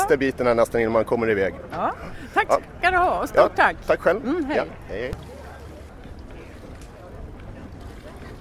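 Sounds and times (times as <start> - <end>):
speech: 0.1 - 5.3
water splashing around a boat: 5.2 - 8.3.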